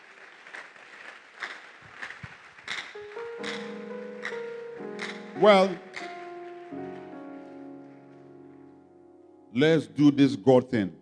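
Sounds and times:
crowd clapping: 0.0s - 7.7s
sustained keyboard or organ chords: 3.0s - 10.4s
speech: 5.4s - 5.9s, 9.6s - 11.0s.

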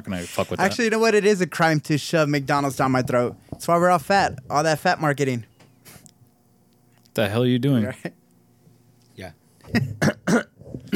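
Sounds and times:
speech: 0.0s - 5.5s, 7.2s - 8.2s, 9.2s - 10.9s
man coughing harsh raspy bursts: 9.7s - 10.9s.

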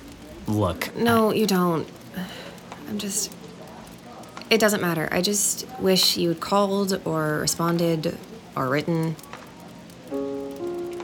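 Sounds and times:
rain falling: 0.0s - 11.0s
speech: 0.5s - 3.4s, 4.5s - 9.3s
sustained musical tones: 10.1s - 11.0s.

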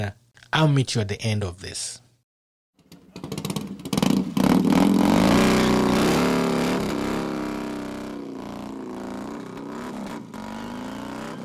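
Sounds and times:
speech: 0.0s - 2.0s
motorcycle engine revving: 2.8s - 11.4s.

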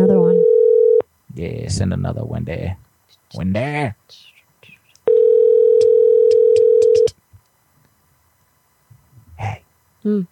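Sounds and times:
telephone ringback tone during an unanswered prank call: 0.0s - 1.0s, 5.1s - 7.1s
speech: 1.4s - 4.3s, 9.4s - 10.2s.

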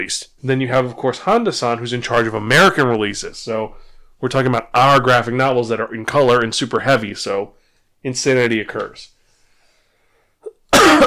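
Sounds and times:
speech: 0.0s - 9.1s
loud rasping throat clearing: 10.4s - 11.0s.

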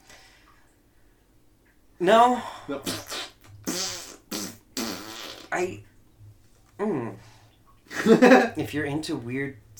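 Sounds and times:
speech: 2.0s - 3.0s, 5.6s - 5.9s, 6.8s - 7.3s, 8.0s - 9.7s
fart noises: 2.8s - 5.8s.

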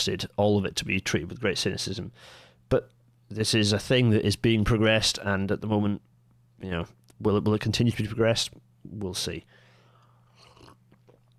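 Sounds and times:
speech: 0.0s - 9.6s
low steady hum: 0.0s - 11.3s
slurping sip from a cup of decaf coffee: 10.2s - 11.3s.

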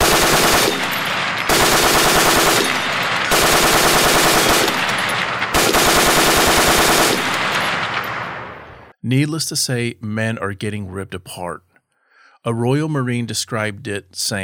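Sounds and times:
machine gun firing in bursts: 0.0s - 8.9s
speech: 9.1s - 11.7s, 12.4s - 14.4s.

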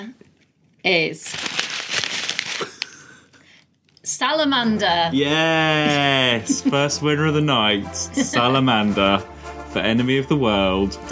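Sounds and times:
speech: 0.8s - 1.6s, 4.1s - 11.0s
paper envelope being handled and opened: 1.2s - 3.0s
laughter: 5.2s - 9.2s.

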